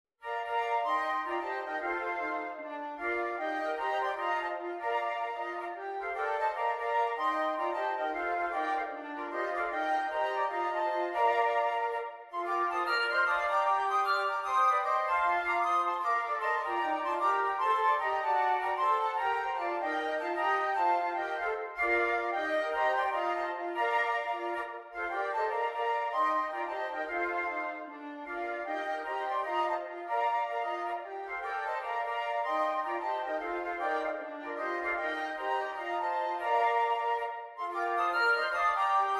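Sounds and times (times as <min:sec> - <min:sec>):
flute quartet playing jazz carols: 0:00.2 - 0:39.1.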